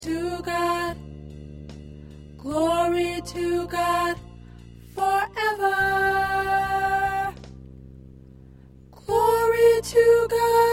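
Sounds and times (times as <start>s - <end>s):
soprano singing: 0.0s - 1.0s, 2.4s - 4.3s, 4.9s - 7.4s, 9.0s - 10.7s.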